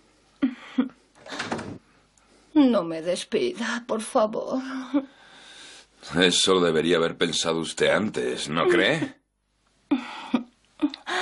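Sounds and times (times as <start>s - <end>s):
wooden door clunks: 1.2s - 1.8s
speech: 2.6s - 5.2s, 6.0s - 9.2s.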